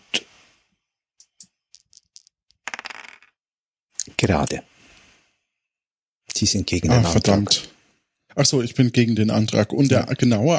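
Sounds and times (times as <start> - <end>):
dice clattering onto a hard surface: 1.2 - 3.4
speech: 4.2 - 4.7, 6.4 - 7.7, 8.4 - 10.5.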